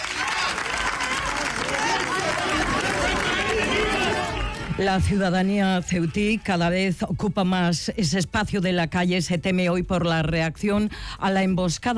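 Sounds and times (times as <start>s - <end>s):
outdoor street crowd clapping: 0.0s - 6.8s
speech: 4.8s - 11.9s.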